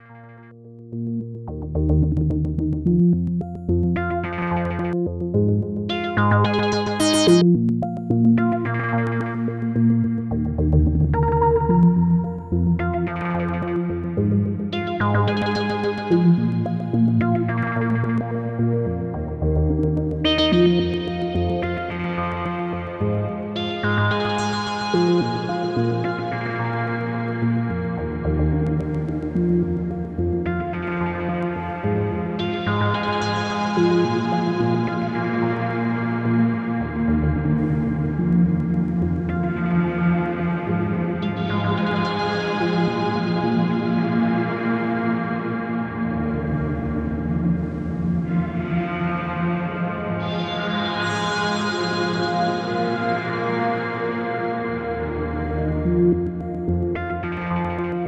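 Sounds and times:
synthesizer with plate reverb: 0:00.0 - 0:58.0.

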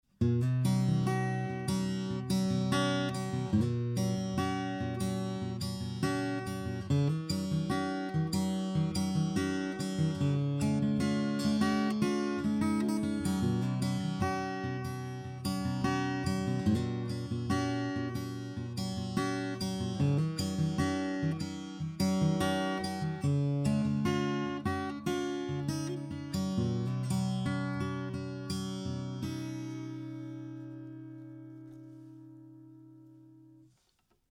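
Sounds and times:
fingerstyle guitar: 0:00.0 - 0:34.3.

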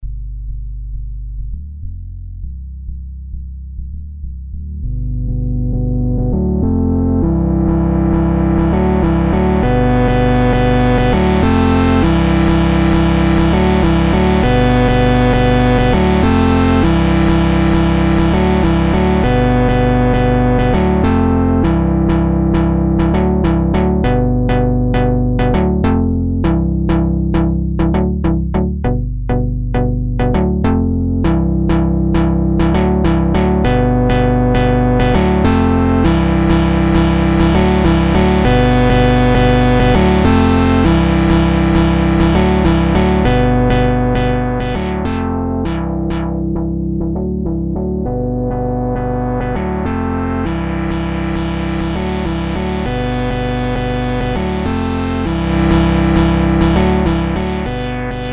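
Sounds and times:
SP12 sampler chords pitched down: 0:00.0 - 0:58.3.

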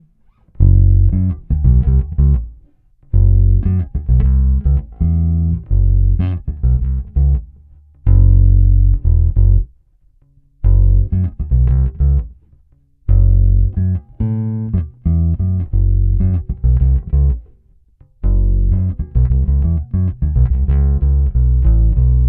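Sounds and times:
bass: 0:00.0 - 0:22.2.

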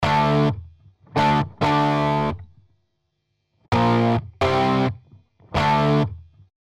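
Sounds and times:
electric guitar with op-amp distortion: 0:00.0 - 0:00.6, 0:01.2 - 0:02.4, 0:03.7 - 0:06.2.

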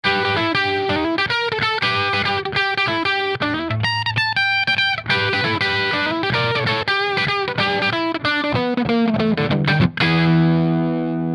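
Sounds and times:
distorted electric guitar on bridge pickup: 0:00.0 - 0:11.3.

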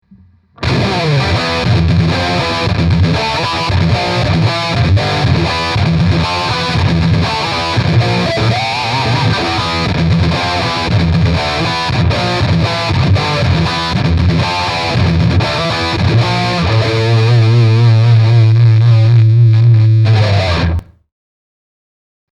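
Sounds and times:
guitar amp with rectifier modeling: 0:00.0 - 0:21.0.

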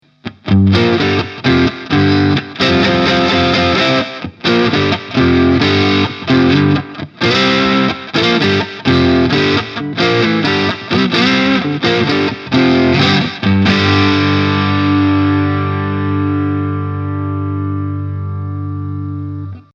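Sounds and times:
distorted guitar crunch at full gain: 0:00.0 - 0:19.7.

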